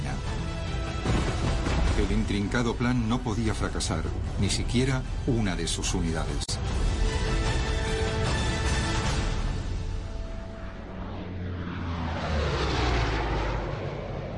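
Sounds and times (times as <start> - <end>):
propeller aircraft engines droning overhead over Holland: 0.0 - 14.3
speech: 2.0 - 7.0.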